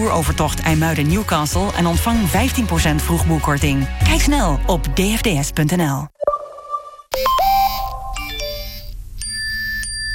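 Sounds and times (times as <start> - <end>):
speech: 0.0 - 6.1
mobile phone ringtone: 6.2 - 10.1
bright electronic melody of bell-like tones from a mobile phone ringtone: 6.3 - 10.1.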